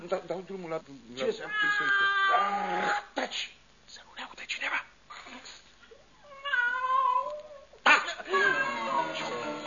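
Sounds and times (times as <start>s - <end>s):
speech: 0.1s - 4.0s
cat meowing and yowling: 1.2s - 3.0s, 6.2s - 7.7s, 8.3s - 9.4s.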